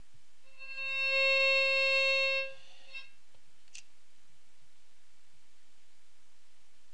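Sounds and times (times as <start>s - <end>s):
viol: 0.4s - 3.2s.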